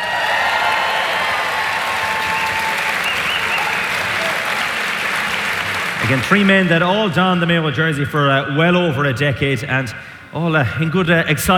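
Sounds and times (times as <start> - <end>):
faint cheering: 0.0 - 6.6
large audience applause welcoming panel guests: 0.0 - 6.9
speech: 6.1 - 11.5.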